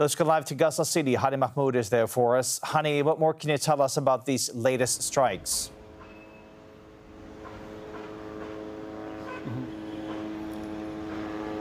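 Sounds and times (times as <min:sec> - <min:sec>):
speech: 0:00.0 - 0:05.8
military drones hovering overhead over Gaza City: 0:04.7 - 0:11.5.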